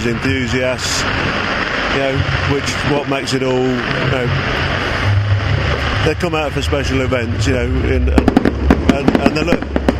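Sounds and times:
speech: 0:00.0 - 0:04.8, 0:06.0 - 0:09.7
fireworks crackling and popping: 0:00.0 - 0:09.9
steady rumbling background: 0:00.0 - 0:09.9.

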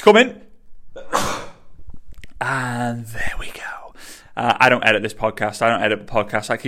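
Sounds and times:
speech: 0:00.0 - 0:01.1, 0:02.4 - 0:03.6, 0:04.4 - 0:06.6
person sneezing: 0:01.0 - 0:01.7
quiet breathing: 0:03.1 - 0:04.4.

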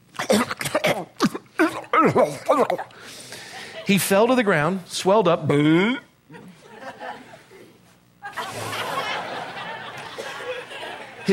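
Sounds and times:
person imitating choking and coughing: 0:00.1 - 0:03.0
speech: 0:02.0 - 0:06.4
laughter: 0:02.5 - 0:03.9, 0:06.3 - 0:11.3.

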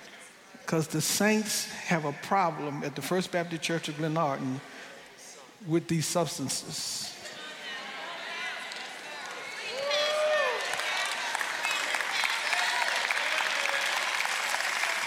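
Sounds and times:
speech: 0:00.6 - 0:04.9, 0:05.6 - 0:07.2
large audience applauding in a church: 0:08.3 - 0:15.0.

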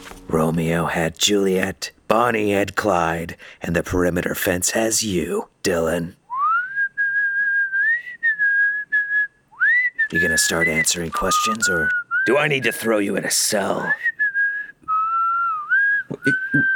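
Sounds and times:
speech: 0:00.3 - 0:06.2, 0:10.1 - 0:14.1, 0:16.1 - 0:16.7
person whistling a sustained wavering tune: 0:06.3 - 0:12.5, 0:14.0 - 0:16.7.

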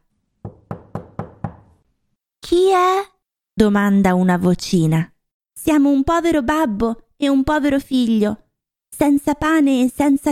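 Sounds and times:
firm knocking on a wooden door: 0:00.4 - 0:01.8
speech: 0:02.5 - 0:10.3.

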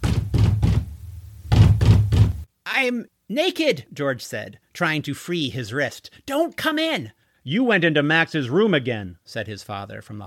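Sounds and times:
heavy fist pounding on a door: 0:00.0 - 0:02.5
speech: 0:02.8 - 0:10.2.

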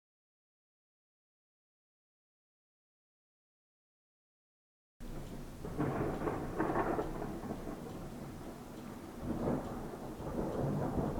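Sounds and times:
low heavy thunder rumbling: 0:05.0 - 0:11.1
rain hissing: 0:05.0 - 0:11.1.

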